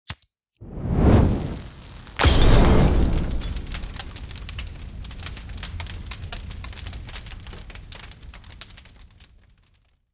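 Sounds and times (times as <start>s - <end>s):
fire from Molotov cocktail: 0.6s - 10.1s
Molotov cocktail glass breaking: 1.5s - 4.6s.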